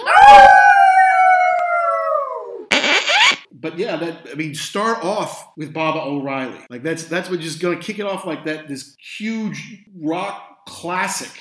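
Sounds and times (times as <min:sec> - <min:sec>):
bulldogs howling: 0:00.0 - 0:02.6
brief burst of noise: 0:02.7 - 0:03.4
speech: 0:03.8 - 0:11.3.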